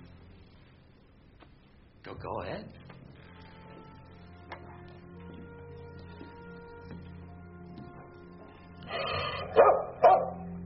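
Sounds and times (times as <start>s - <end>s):
speech: 2.0s - 2.9s
dog barking: 8.9s - 10.5s.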